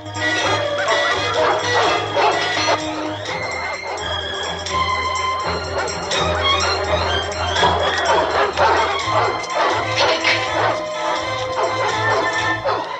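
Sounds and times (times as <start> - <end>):
dogs barking and yipping as they are released from a caged enclosure to chase: 0.0 - 12.9
laughter: 0.0 - 12.9.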